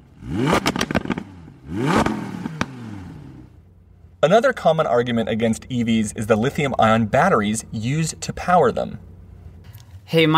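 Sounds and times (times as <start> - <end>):
combustion engine revving with crackling pops: 0.0 - 3.6
speech: 4.2 - 9.1, 10.1 - 10.3.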